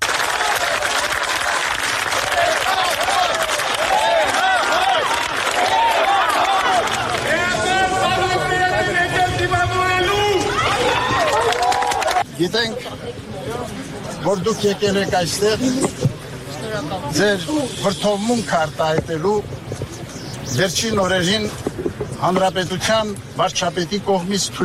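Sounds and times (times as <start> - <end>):
crowd clapping outside an arrivals hall: 0.0 - 8.2, 10.5 - 12.3
overlapping crowd chatter: 0.0 - 24.6
crowd voices calling out: 2.2 - 24.6
speech: 14.3 - 16.0, 16.7 - 19.6, 20.5 - 21.6, 22.2 - 24.6.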